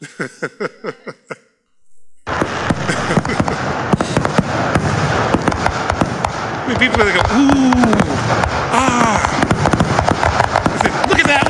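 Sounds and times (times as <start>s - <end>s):
laughter: 0.0s - 1.6s, 2.4s - 4.2s, 6.7s - 9.6s, 10.6s - 11.4s
speech: 0.2s - 0.8s, 6.9s - 8.0s
fireworks display popping: 2.3s - 11.4s.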